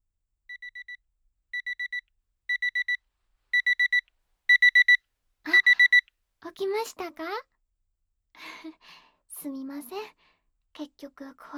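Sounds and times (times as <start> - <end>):
nap alarm clock high-pitched electronic beeping: 0.5 - 1.0, 1.6 - 3.0, 3.6 - 6.0
speech: 6.6 - 7.5, 8.4 - 10.2, 10.8 - 11.5.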